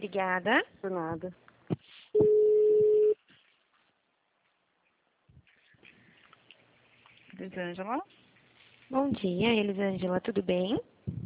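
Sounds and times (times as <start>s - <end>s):
speech: 0.0s - 2.3s, 7.4s - 8.0s, 8.9s - 11.2s
steady electronic tone of a phone call being transferred: 2.2s - 3.2s.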